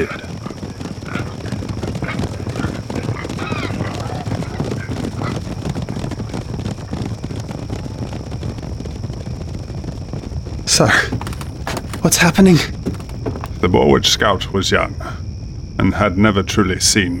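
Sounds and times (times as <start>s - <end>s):
speech: 0.0s - 0.3s, 10.8s - 11.2s, 12.0s - 12.8s, 13.6s - 15.2s, 15.8s - 17.1s
creatures galloping hoofbeats: 0.0s - 13.7s.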